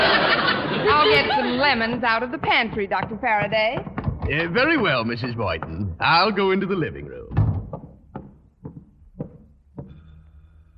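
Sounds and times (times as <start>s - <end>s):
laughter: 0.0s - 2.2s
speech: 1.1s - 7.2s
knocking on wooden front door of an apartment: 1.6s - 9.9s.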